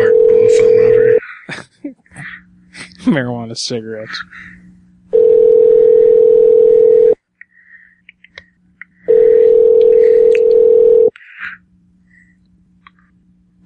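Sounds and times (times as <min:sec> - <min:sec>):
telephone line ringing tones: 0:00.0 - 0:01.2, 0:05.1 - 0:07.2, 0:09.1 - 0:11.1
speech: 0:03.1 - 0:04.6.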